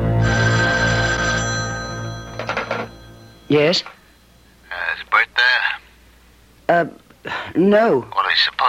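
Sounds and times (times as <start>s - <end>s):
old telephone bell ringing in an office: 0.2s - 4.6s
speech: 3.5s - 4.0s, 6.7s - 8.6s.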